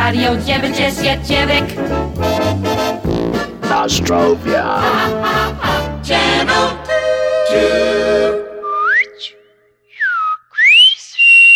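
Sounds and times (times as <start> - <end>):
speech: 0.1 - 3.0, 3.7 - 6.8, 7.5 - 8.4
person whistling upward-sliding notes: 8.5 - 11.5.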